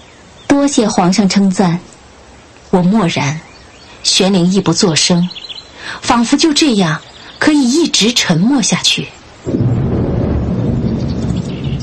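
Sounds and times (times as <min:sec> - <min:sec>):
speech: 0:00.6 - 0:02.0, 0:02.8 - 0:09.8
muffled thunder rumbling outside a palace hall: 0:09.4 - 0:11.8.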